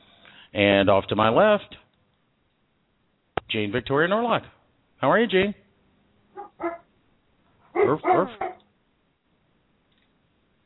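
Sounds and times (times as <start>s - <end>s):
speech: 0.5s - 1.8s, 3.5s - 5.6s, 7.8s - 8.5s
dogs barking: 6.3s - 6.9s, 7.6s - 8.7s
dogs whimpering: 6.4s - 6.9s, 7.8s - 8.6s.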